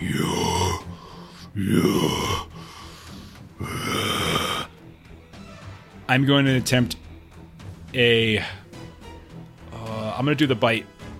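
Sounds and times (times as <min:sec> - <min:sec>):
voice imitating heavy labored raspy breathing: 0:00.0 - 0:04.9
speech: 0:01.6 - 0:02.5, 0:06.1 - 0:07.0, 0:07.9 - 0:08.6, 0:10.2 - 0:10.9.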